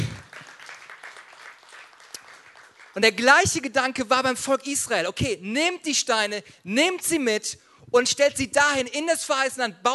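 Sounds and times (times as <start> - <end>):
audience applause: 0.0 - 3.0
speech: 3.0 - 9.9.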